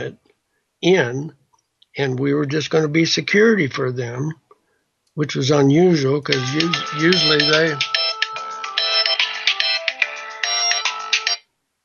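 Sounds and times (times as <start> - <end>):
speech: 0.0 - 0.2, 0.8 - 1.4, 2.0 - 4.4, 5.2 - 8.0
mobile phone ringtone: 6.4 - 11.4.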